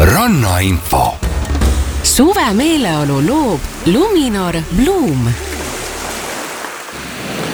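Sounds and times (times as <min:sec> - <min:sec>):
speech: 0:00.1 - 0:01.2, 0:02.2 - 0:05.5
sea waves: 0:02.0 - 0:07.5.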